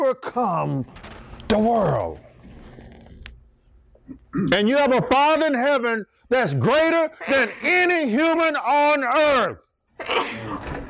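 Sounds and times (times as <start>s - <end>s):
speech: 0.1s - 2.3s, 4.1s - 10.7s
person sneezing loudly: 10.0s - 10.7s.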